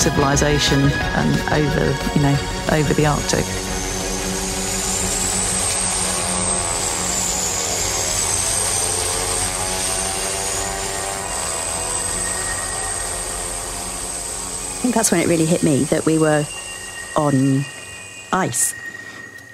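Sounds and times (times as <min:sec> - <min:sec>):
speech: 0:00.0 - 0:03.7, 0:14.9 - 0:16.6, 0:17.2 - 0:18.8
small ski plane engine roaring during takeoff over snow in the Arctic: 0:00.0 - 0:19.5.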